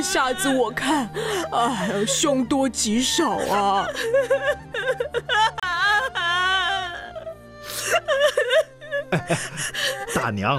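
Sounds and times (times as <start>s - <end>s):
speech: 0.0s - 5.6s, 7.9s - 10.5s
woman crying in wails and sobs: 0.0s - 10.5s
laughter: 7.8s - 10.5s.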